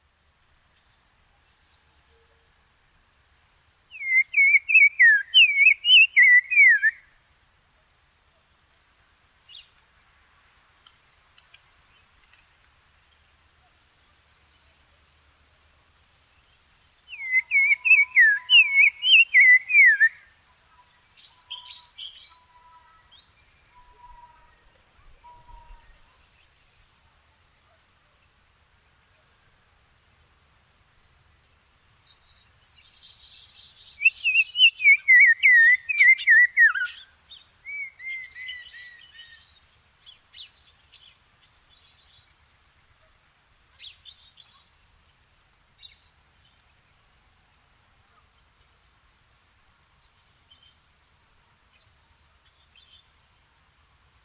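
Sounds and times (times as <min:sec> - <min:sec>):
black-crowned tchagra calling: 0:04.0 - 0:07.0, 0:17.1 - 0:20.2, 0:34.0 - 0:37.0.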